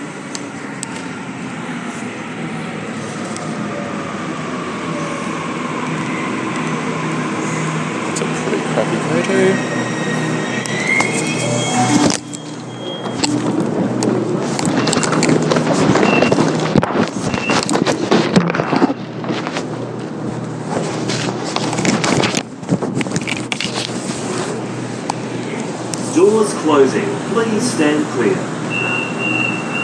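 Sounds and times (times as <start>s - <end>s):
Waratah commuter train rumbling into a station: 0.0s - 29.8s
train brake and clattering rattling noises: 5.8s - 26.2s.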